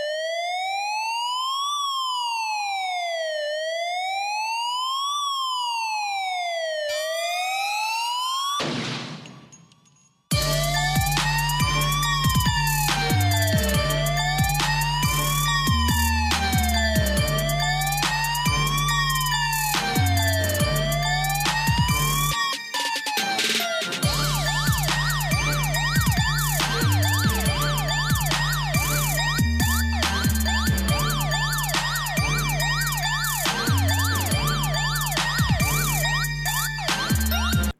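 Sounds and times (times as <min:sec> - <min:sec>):
siren wailing in rising and falling sweeps: 0:00.0 - 0:08.6, 0:10.3 - 0:37.7
pulsing rhythmic musical backing: 0:10.3 - 0:37.7.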